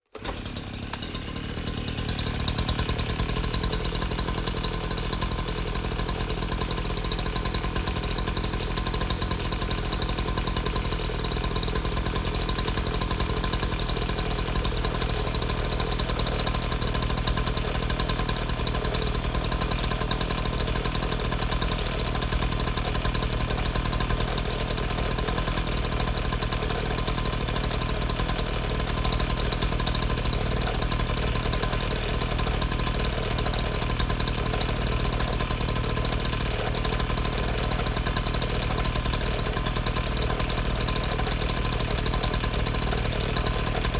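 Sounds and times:
chainsaw: 0:00.0 - 0:43.9.

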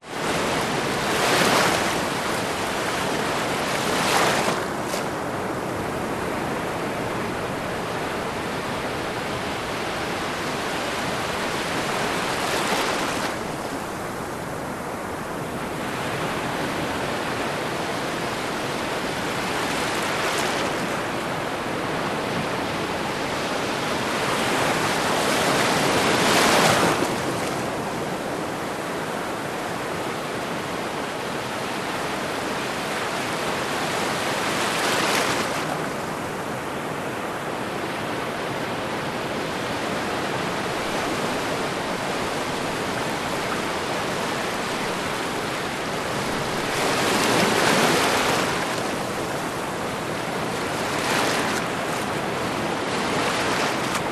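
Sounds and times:
smaller waves lapping onto sandy beach: 0:00.0 - 0:54.1
distant subtropical ocean surf: 0:00.1 - 0:54.1.

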